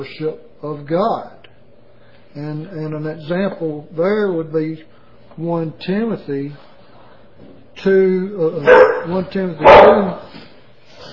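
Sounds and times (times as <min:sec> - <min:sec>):
speech: 0:00.0 - 0:01.4, 0:02.3 - 0:06.7, 0:07.4 - 0:10.4
loud dog barking indoors: 0:08.6 - 0:10.2.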